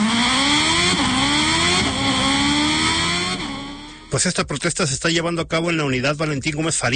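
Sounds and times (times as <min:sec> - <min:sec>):
motorcycle engine running through gear shifts: 0:00.0 - 0:04.2
speech: 0:04.2 - 0:06.9.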